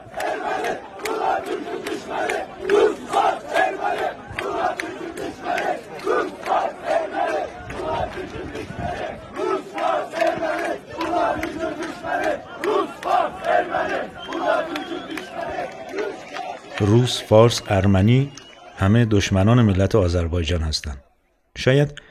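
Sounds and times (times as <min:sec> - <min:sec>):
large protest crowd chanting a slogan in unison: 0:00.0 - 0:19.8
speech: 0:17.0 - 0:22.0.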